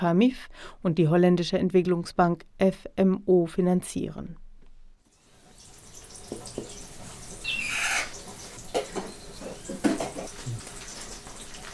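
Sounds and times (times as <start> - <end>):
speech: 0.0 - 4.4
water boiling on a large stove: 5.1 - 11.7.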